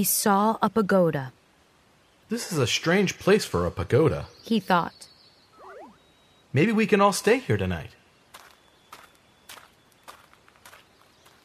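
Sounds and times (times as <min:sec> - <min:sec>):
speech: 0:00.0 - 0:01.4, 0:02.3 - 0:05.1, 0:06.5 - 0:08.0
faint high tone: 0:05.6 - 0:06.0
footsteps crunching through leaves and twigs on a forest floor: 0:08.3 - 0:11.4.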